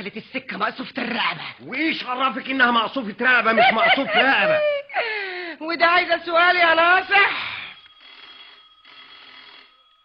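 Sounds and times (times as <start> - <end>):
speech: 0.0 - 7.4
laughter: 3.4 - 5.0
telephone ringing: 6.3 - 10.0.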